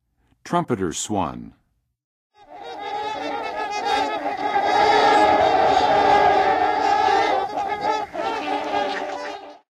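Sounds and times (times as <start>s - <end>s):
Trumpeter swan calling in the Western USA: 2.4s - 9.7s.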